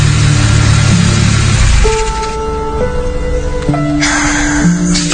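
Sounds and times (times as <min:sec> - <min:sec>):
car engine revving and driving off: 0:00.0 - 0:02.5
road rumble: 0:00.0 - 0:05.0.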